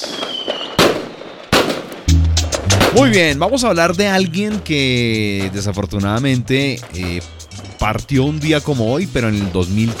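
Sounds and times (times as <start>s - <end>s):
faint high firework whistle: 0.0s - 2.1s, 6.8s - 8.4s
fireworks banging: 0.0s - 9.9s
speech: 3.0s - 9.9s.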